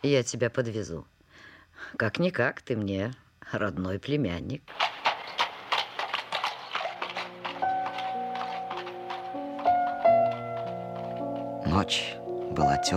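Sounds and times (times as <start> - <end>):
speech: 0.0 - 1.2, 1.8 - 5.0, 11.8 - 12.9
horse hooves clip-clopping at a trot pulling a one-horse carriage: 4.7 - 12.6
sustained music: 6.0 - 12.9.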